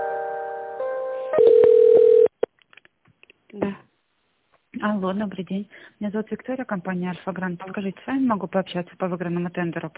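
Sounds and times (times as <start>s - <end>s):
telephone line tone as an office call is transferred and connected: 1.3s - 2.3s
speech: 4.9s - 9.9s.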